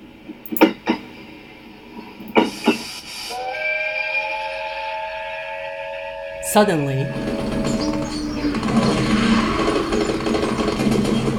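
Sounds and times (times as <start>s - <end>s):
steam train emerging from tunnel chuffing: 2.3s - 11.3s
steam train whistle: 2.4s - 10.2s
speech: 6.5s - 7.7s.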